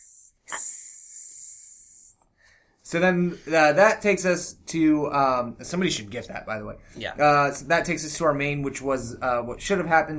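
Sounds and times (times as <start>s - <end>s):
person hissing like a snake: 0.0s - 2.3s
speech: 2.9s - 10.1s.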